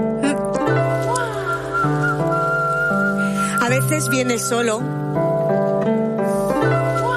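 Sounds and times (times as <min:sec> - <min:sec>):
musical backdrop of held tones: 0:00.0 - 0:07.1
person whistling to call a stray dog: 0:01.1 - 0:04.9
speech: 0:03.8 - 0:06.0.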